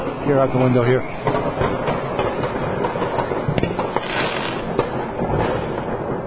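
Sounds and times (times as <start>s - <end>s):
speech: 0.3s - 1.6s
fireworks going off outside on New Year's Eve: 1.2s - 6.0s.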